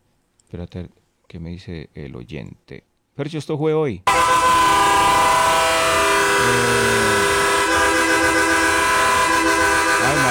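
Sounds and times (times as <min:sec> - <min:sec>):
speech: 0:00.5 - 0:07.3, 0:10.0 - 0:10.2
train horn long steady blast: 0:04.1 - 0:10.2.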